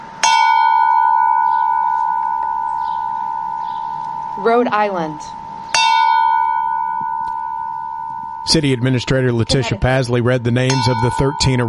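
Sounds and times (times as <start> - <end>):
bell rung at a civic ceremony: 0.0 - 11.6
speech: 4.4 - 5.4, 8.5 - 11.6.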